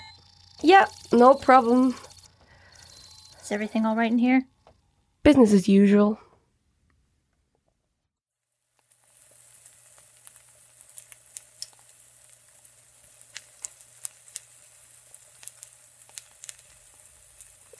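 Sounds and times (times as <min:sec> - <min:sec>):
speech: 0:00.6 - 0:02.0, 0:03.5 - 0:04.5, 0:05.2 - 0:06.2
stir fry sizzling in a pan with pops and crackles: 0:08.6 - 0:17.7.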